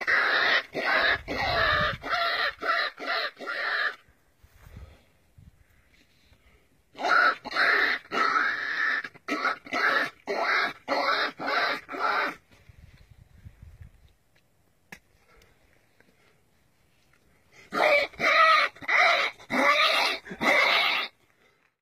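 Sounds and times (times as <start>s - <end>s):
peccary calls: 0.0s - 4.1s, 6.9s - 12.5s, 17.6s - 21.2s.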